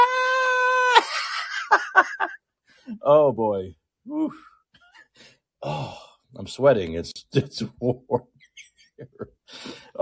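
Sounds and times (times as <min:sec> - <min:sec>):
woman screaming at a Board of Supervisors public meeting: 0:00.0 - 0:01.1
speech: 0:03.0 - 0:04.6, 0:05.6 - 0:08.3, 0:09.0 - 0:10.0.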